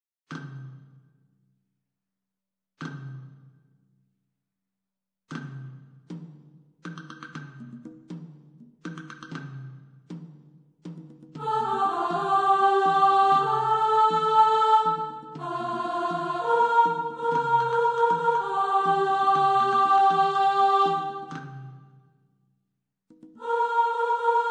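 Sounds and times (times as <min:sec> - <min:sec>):
soprano: 0:11.4 - 0:21.6, 0:23.4 - 0:24.5.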